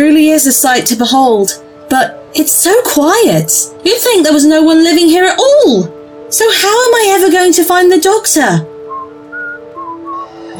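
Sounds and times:
speech: 0.2s - 8.7s
person whistling a short wavering tune: 8.9s - 10.5s.

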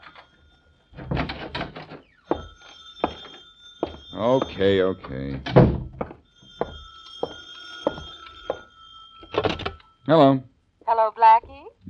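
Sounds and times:
telephone bell ringing: 0.0s - 5.0s, 6.2s - 10.1s
speech: 4.2s - 5.8s, 10.1s - 10.5s.

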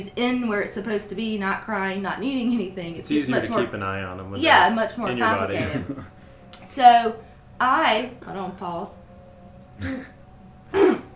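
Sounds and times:
speech: 0.0s - 9.0s, 9.8s - 10.1s
laughter: 5.2s - 6.1s
breathy throat-clearing coughs: 9.8s - 11.1s.

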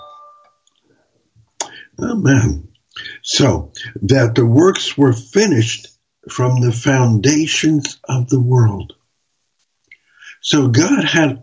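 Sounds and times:
telephone ringing with a spam call: 0.0s - 0.6s
speech: 2.0s - 9.0s, 10.4s - 11.4s.

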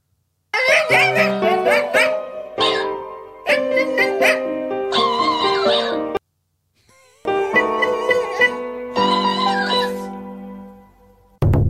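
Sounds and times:
small dog yowling and howling in tuneful phrases: 0.6s - 6.2s, 6.9s - 10.2s.

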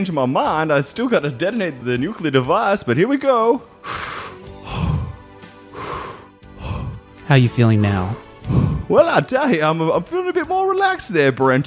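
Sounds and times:
speech: 0.0s - 4.1s, 7.3s - 11.6s
deep breaths drawn in through the nose: 3.7s - 7.2s, 8.3s - 8.9s.

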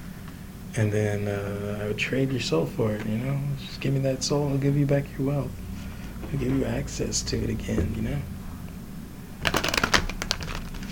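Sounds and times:
speech: 0.8s - 5.6s, 6.2s - 8.3s
deck of cards shuffling: 9.4s - 10.9s.

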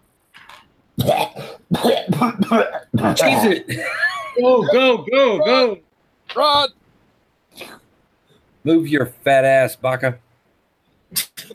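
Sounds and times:
person coughing and sputtering from billowing smoke: 1.0s - 4.9s, 11.1s - 11.5s
speech: 1.8s - 6.8s, 8.6s - 10.2s, 11.1s - 11.5s.

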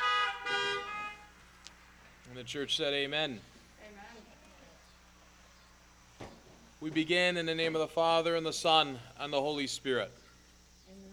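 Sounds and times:
several car horns honking: 0.0s - 1.4s
speech: 2.4s - 3.5s, 6.8s - 10.2s.

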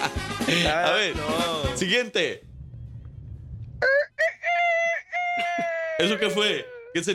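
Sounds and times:
speech: 0.0s - 2.5s, 6.0s - 7.1s
rooster crowing: 3.8s - 6.9s.

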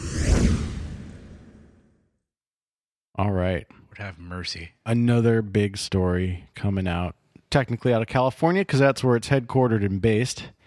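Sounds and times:
broadband swoosh transition sound effect: 0.0s - 1.9s
speech: 3.2s - 10.6s.

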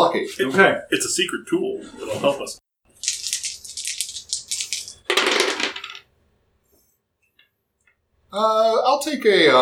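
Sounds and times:
speech: 0.1s - 3.2s, 8.3s - 9.6s
dice rattling in a cup or cupped hands: 3.0s - 6.0s.

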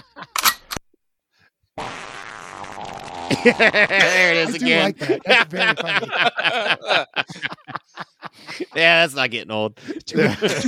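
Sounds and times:
gun cocking: 0.4s - 0.8s
buzzy fart sound effect: 1.8s - 3.8s
laughter: 3.3s - 9.2s, 9.9s - 10.6s
speech: 3.4s - 7.6s, 8.6s - 10.6s.

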